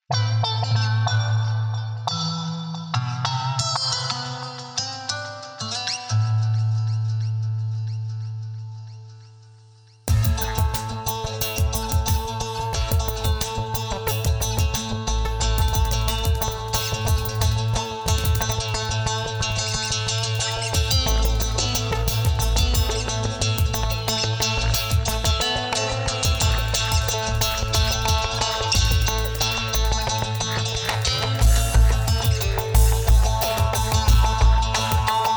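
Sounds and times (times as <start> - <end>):
bass: 0.1 - 4.1, 6.1 - 35.3
guitar: 0.1 - 35.3
303 acid bass synthesizer solo: 14.3 - 25.5, 26.2 - 35.3.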